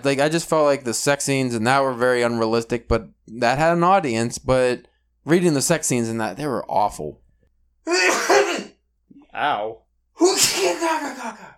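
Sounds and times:
speech: 0.0 - 7.2, 7.8 - 8.4, 9.4 - 11.5
loud sneeze trailing into a voiced groan: 7.9 - 8.8, 10.2 - 11.5.

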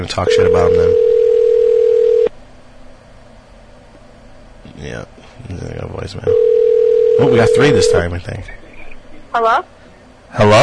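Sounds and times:
speech: 0.0 - 1.1, 4.8 - 8.6, 9.3 - 10.6
telephone ringing tone on an outgoing call: 0.3 - 2.3, 6.3 - 8.1.

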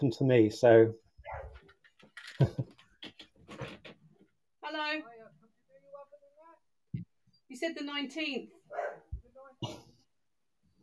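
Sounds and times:
speech: 0.0 - 1.0, 2.4 - 2.7, 7.6 - 8.9
dog barking excitedly at front door: 1.2 - 1.6, 8.7 - 9.2
dog yipping and whining: 1.2 - 1.6.

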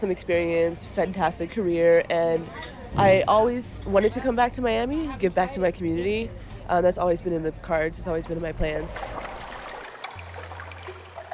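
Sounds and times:
speech: 0.0 - 9.2
low constant hum: 0.0 - 9.6
bay water lapping at edges of an abandoned speedboat racing stadium: 8.0 - 11.3.

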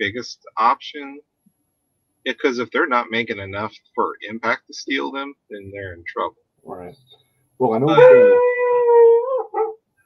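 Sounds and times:
speech: 0.0 - 1.3, 2.2 - 8.7
dog howling: 7.8 - 9.8.

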